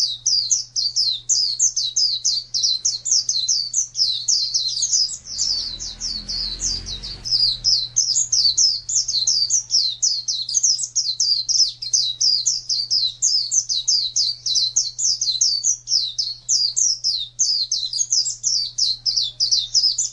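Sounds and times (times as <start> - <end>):
steady hum: 0.0 - 19.0
white-eye singing a busy high twittering warble: 0.0 - 20.1
low rumbling noise: 4.6 - 9.5.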